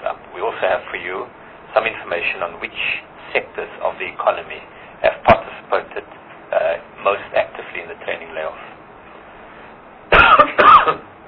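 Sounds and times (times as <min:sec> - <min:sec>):
speech: 0:00.6 - 0:06.1
harsh coughs: 0:10.1 - 0:11.1.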